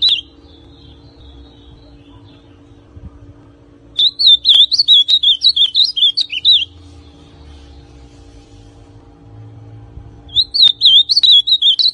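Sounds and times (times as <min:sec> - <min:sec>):
low hum: 0:00.0 - 0:11.9
ultramarine grosbeak singing a warbled phrase: 0:04.0 - 0:06.8, 0:10.3 - 0:11.9.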